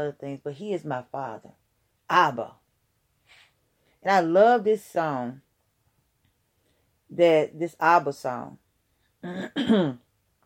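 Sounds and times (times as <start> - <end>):
speech: 0.0 - 2.6, 4.0 - 5.4, 7.1 - 8.6, 9.2 - 10.0
throat clearing: 9.2 - 10.0.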